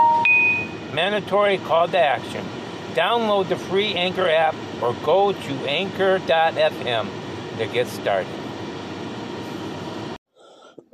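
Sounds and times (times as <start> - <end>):
speech: 1.0 - 8.4
person coughing: 10.5 - 10.9.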